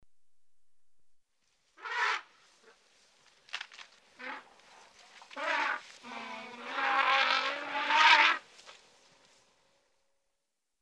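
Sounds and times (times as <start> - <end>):
branches breaking: 3.2 - 4.0
elephants trumpeting: 5.3 - 8.4.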